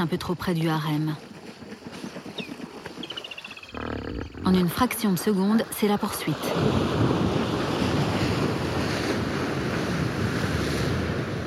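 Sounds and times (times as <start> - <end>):
speech: 0.0 - 1.3, 4.5 - 7.2
hippo charging through water: 1.2 - 11.4
surging waves and spray churned up by a charging hippo: 5.6 - 11.4.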